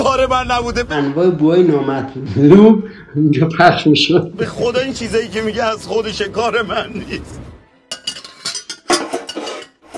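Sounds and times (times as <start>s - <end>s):
speech: 0.2s - 7.5s
medium-sized cooking pot clanking against other cookware: 7.9s - 9.9s.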